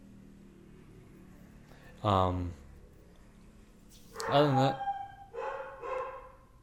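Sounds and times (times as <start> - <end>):
speech: 2.0 - 2.6, 4.3 - 4.9
dog barking: 4.2 - 6.5.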